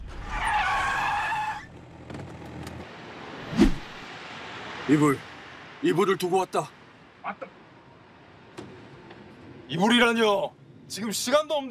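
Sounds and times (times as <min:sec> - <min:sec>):
truck tires screeching while braking to a sudden stop: 0:00.0 - 0:02.7
speech: 0:04.9 - 0:07.6, 0:09.7 - 0:11.6.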